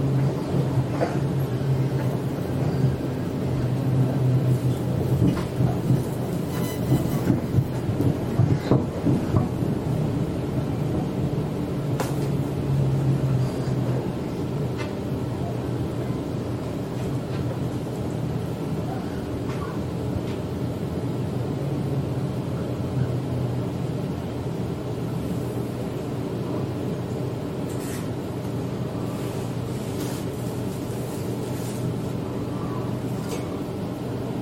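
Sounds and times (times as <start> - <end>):
Sydney commuter train motor humming: 0.0 - 18.2
Sydney commuter train rumbling in Australia: 0.0 - 34.4.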